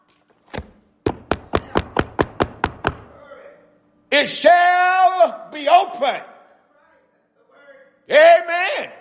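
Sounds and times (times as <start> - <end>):
knocking on wood: 0.6 - 3.1
speech: 4.2 - 6.3, 8.1 - 8.9.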